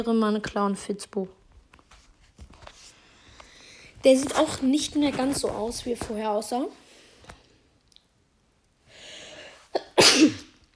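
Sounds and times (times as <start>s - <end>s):
speech: 0.0s - 1.4s, 4.0s - 6.8s
quiet breathing: 2.8s - 4.1s, 8.8s - 9.7s
person sneezing: 9.7s - 10.6s.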